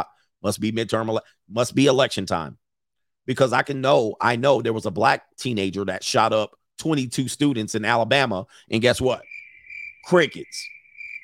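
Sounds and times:
speech: 0:00.0 - 0:02.6, 0:03.2 - 0:09.3, 0:10.0 - 0:10.8
crickets chirping: 0:09.0 - 0:11.2.

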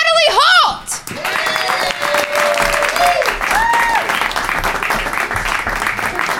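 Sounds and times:
audience applause welcoming a comedian at a show in Portland: 0:01.0 - 0:06.3
audience whoops and cheers: 0:01.1 - 0:04.3.

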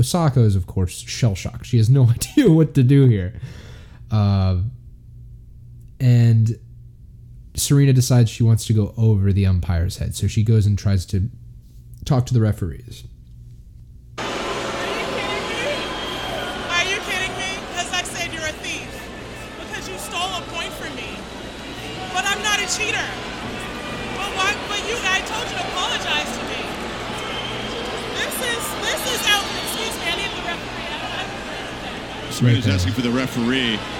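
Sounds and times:
speech: 0:00.0 - 0:04.8, 0:06.0 - 0:06.6, 0:07.6 - 0:11.4, 0:12.0 - 0:13.1, 0:32.4 - 0:33.9
large tennis stadium crowd murmuring: 0:14.2 - 0:33.9
laughter: 0:14.2 - 0:33.9.

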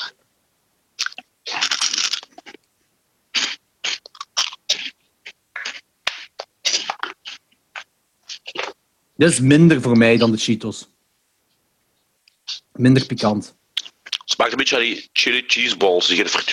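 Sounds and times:
crunching and chewing jalapeno-flavoured snack chips during a tasting: 0:01.0 - 0:02.6
speech: 0:09.2 - 0:11.0, 0:12.8 - 0:13.6, 0:14.4 - 0:16.5.

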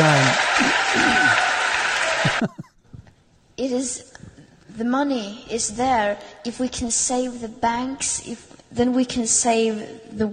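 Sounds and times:
crowd applauding: 0:00.0 - 0:02.6
laughter: 0:00.0 - 0:02.9
speech: 0:03.6 - 0:04.2, 0:04.8 - 0:10.3.

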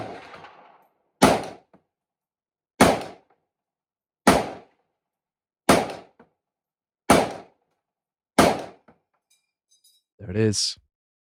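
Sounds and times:
M1 Garand rifle shots: 0:00.0 - 0:01.7, 0:02.8 - 0:03.3, 0:04.3 - 0:04.7, 0:05.7 - 0:06.1, 0:07.1 - 0:07.5, 0:08.4 - 0:08.8
speech: 0:10.2 - 0:10.8.

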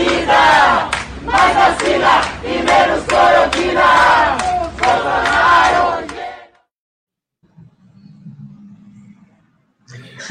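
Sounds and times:
crowd of student protesters shouting a slogan in unison: 0:00.0 - 0:06.7.

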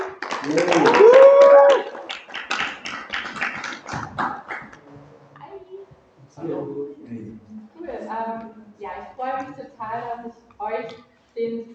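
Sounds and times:
small audience clapping: 0:00.0 - 0:04.8
speech: 0:00.4 - 0:01.0.

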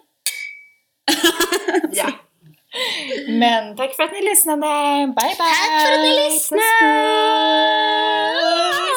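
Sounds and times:
glasses clinking in a toast: 0:00.3 - 0:01.6
laughter: 0:01.1 - 0:02.2
speech: 0:03.3 - 0:08.8.

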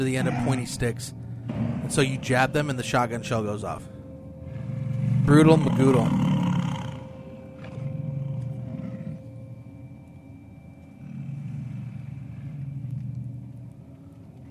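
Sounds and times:
wolf growling: 0:00.0 - 0:02.7, 0:04.5 - 0:09.5, 0:10.9 - 0:13.8
speech: 0:00.0 - 0:04.0, 0:05.3 - 0:06.3.

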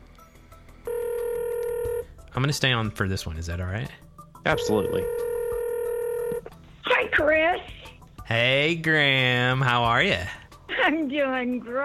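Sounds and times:
steady electronic telephone dialing tone: 0:00.9 - 0:02.1, 0:04.5 - 0:06.5
speech: 0:02.4 - 0:05.3, 0:07.2 - 0:11.8.

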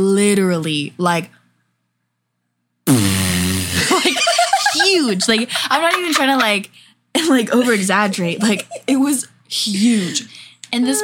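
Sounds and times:
speech: 0:00.0 - 0:01.4, 0:04.9 - 0:11.0
person imitating a huge fart with their voice: 0:02.8 - 0:04.0
laughter: 0:03.8 - 0:06.6, 0:07.5 - 0:08.9.

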